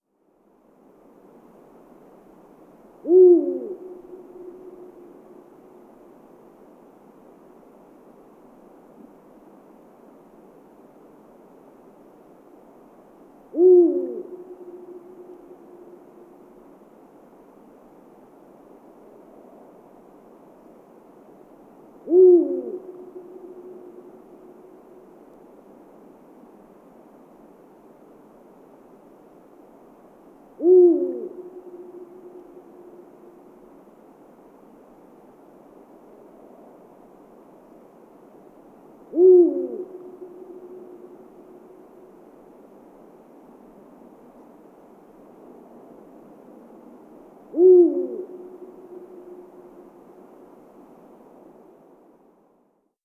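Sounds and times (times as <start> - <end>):
eagle owl calling: 3.0 - 5.0, 13.5 - 15.5, 22.0 - 24.2, 30.6 - 33.0, 39.1 - 41.3, 47.5 - 49.7.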